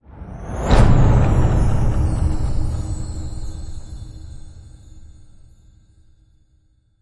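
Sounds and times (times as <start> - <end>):
magical whoosh hit: 0.0 - 5.5.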